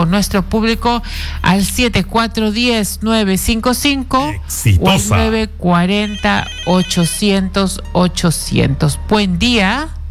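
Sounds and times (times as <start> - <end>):
speech: 0.0 - 10.0
electronic telephone ringtone for an incoming call: 6.0 - 7.2.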